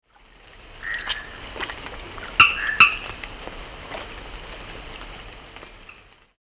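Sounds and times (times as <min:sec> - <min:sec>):
Spinomantis peraccae frog calling: 0:00.4 - 0:06.1.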